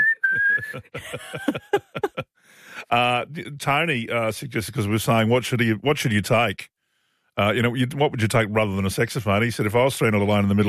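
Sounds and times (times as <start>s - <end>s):
person whistling a steady sustained high note through lips: 0.0s - 0.8s
laughter: 0.0s - 2.2s, 2.8s - 3.4s
speech: 0.6s - 6.7s, 7.4s - 10.6s.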